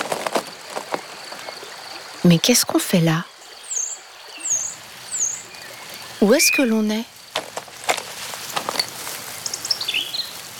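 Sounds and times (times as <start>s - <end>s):
river water flowing: 0.0s - 10.5s
speech: 2.2s - 3.3s, 6.2s - 7.1s
high brief bird chirps: 3.6s - 7.0s, 9.4s - 10.4s.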